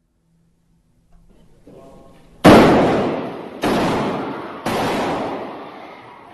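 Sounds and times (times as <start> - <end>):
gunshots echoing through a large indoor space in a church: 1.5 - 6.3.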